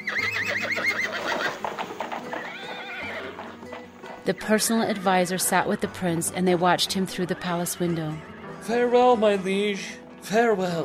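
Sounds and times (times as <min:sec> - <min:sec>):
horse neighing: 0:00.0 - 0:05.8, 0:07.1 - 0:08.6
horse hooves clopping: 0:00.0 - 0:08.1
speech: 0:04.2 - 0:10.8.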